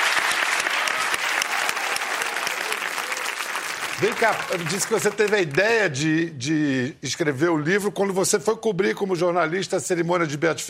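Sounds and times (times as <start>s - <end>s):
crowd clapping: 0.0s - 5.8s
speech: 4.0s - 10.6s.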